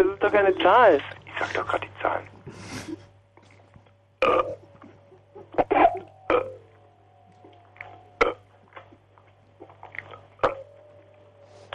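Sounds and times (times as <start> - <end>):
speech: 0.0 - 3.0, 4.2 - 4.6
low steady hum: 0.0 - 11.7
short guttural burps: 4.2 - 4.8, 5.4 - 6.7, 7.4 - 9.0, 9.6 - 10.7.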